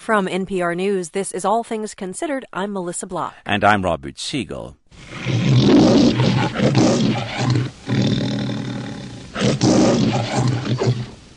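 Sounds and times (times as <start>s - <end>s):
speech: 0.0s - 5.4s, 6.2s - 7.8s
lion roaring: 5.0s - 11.2s.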